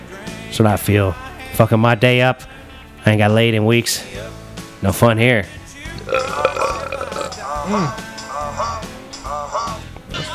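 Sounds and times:
speech: 0.5s - 6.5s, 7.7s - 8.1s
loud burp: 5.9s - 7.5s.

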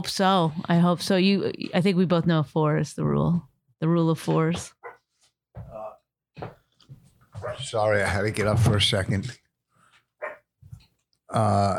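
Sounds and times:
speech: 0.0s - 4.8s, 7.5s - 9.4s, 11.3s - 11.7s
dog barking and growling at home: 4.7s - 5.1s, 7.4s - 7.8s, 10.2s - 10.5s.

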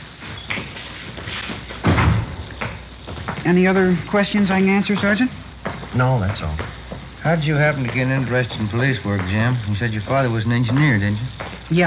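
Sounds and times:
door being opened and closed: 0.2s - 3.3s
speech: 3.4s - 11.8s.

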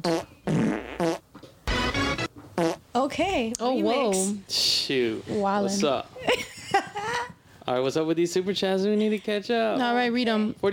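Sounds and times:
fart noises: 0.0s - 2.8s
speech: 3.1s - 6.5s, 7.7s - 10.7s.

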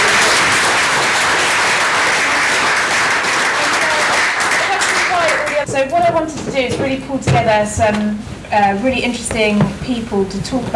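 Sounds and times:
crowd applauding in a room: 0.0s - 5.7s
speech: 5.8s - 10.7s.

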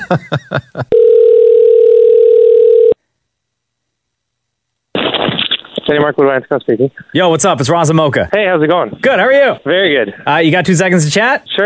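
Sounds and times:
speech: 0.1s - 1.4s, 5.9s - 11.6s
telephone keypad tones dialing a number: 0.9s - 3.0s
burst of sound: 4.9s - 6.0s.

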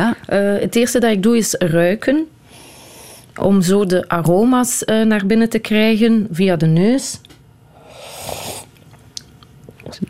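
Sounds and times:
speech: 0.1s - 2.4s, 3.4s - 7.3s
breathing: 2.4s - 3.4s
slurping filter coffee to taste it: 7.8s - 8.8s.

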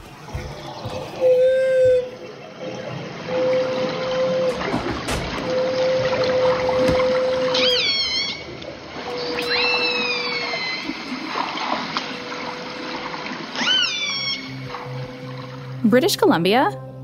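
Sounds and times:
whale feeding calls with long moaning tones via hydrophone: 0.4s - 15.9s
whale feeding calls with rising high-pitched whoops via hydrophone: 1.2s - 2.3s, 5.5s - 15.0s
speech: 15.9s - 17.0s.

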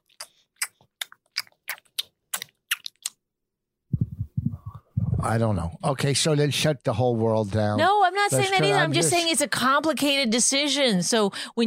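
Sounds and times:
wet gum chewing smacks: 0.0s - 3.2s
speech: 5.2s - 11.6s.

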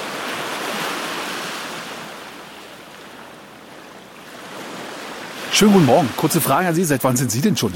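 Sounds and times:
sea surf breaking on a beach: 0.0s - 7.7s
speech: 5.5s - 7.7s.

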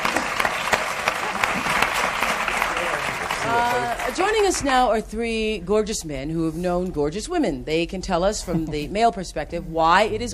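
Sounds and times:
studio audience applause: 0.0s - 4.7s
speech: 3.5s - 10.3s.

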